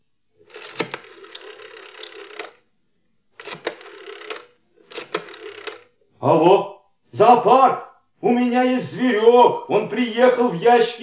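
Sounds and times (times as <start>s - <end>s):
telephone being dialled to call the zoo: 0.4s - 2.7s, 3.3s - 6.0s
speech: 6.2s - 11.0s.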